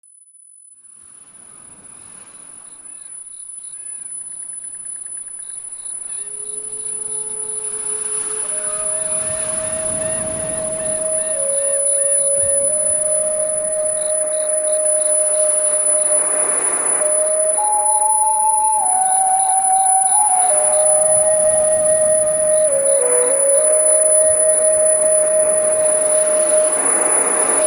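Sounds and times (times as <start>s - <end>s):
10000 Hz tone: 5.9s - 27.6s.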